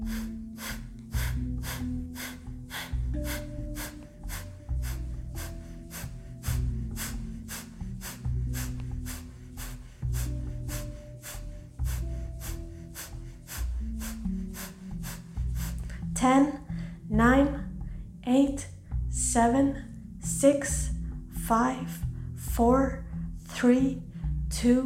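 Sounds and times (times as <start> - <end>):
fast forceful fire breathing through the nose: 0.0 - 17.1
low sustained tones: 0.0 - 24.8.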